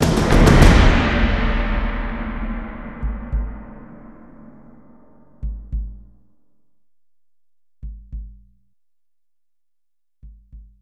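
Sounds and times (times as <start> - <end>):
cymbal splash: 0.0 - 5.4
drum roll: 0.0 - 6.2.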